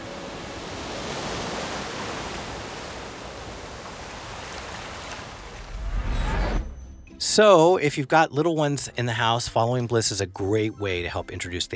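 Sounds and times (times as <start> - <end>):
ocean waves: 0.0 - 7.2
speech: 7.2 - 11.7.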